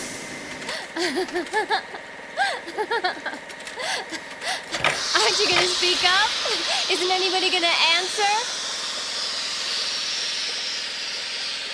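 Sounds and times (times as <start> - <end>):
steam hissing from a boiling cooling system: 0.0 - 0.9, 4.4 - 11.7
speech: 1.0 - 8.6.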